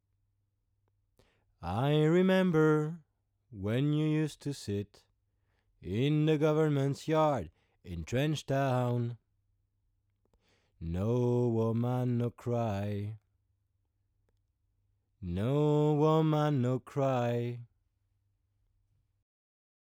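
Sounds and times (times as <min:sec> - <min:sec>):
voice through C414 microphone and Portico preamp with high gain and silk: 0:01.7 - 0:03.0, 0:03.6 - 0:05.0, 0:05.8 - 0:09.2, 0:10.8 - 0:13.2, 0:15.2 - 0:17.6.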